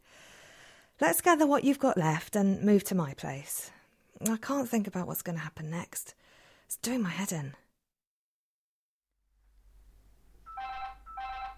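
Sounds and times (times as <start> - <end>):
speech: 1.0 - 7.6
telephone ringing with a bright electronic trill: 10.5 - 11.5.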